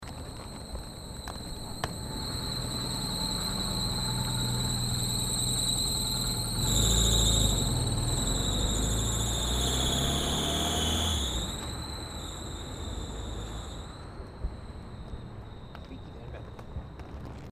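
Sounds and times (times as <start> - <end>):
car driving off: 0.0 - 15.7
squeaky car fan belt: 0.0 - 17.5.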